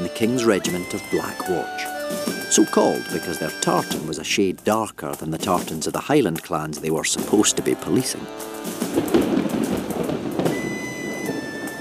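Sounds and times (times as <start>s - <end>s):
speech: 0.2s - 1.9s, 2.5s - 9.2s
steady rain falling on moors in the Scottish Highlands: 7.4s - 11.7s.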